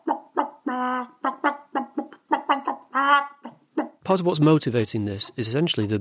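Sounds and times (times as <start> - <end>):
person imitating bird calls into a phone: 0.0 - 4.0
speech: 4.1 - 5.9.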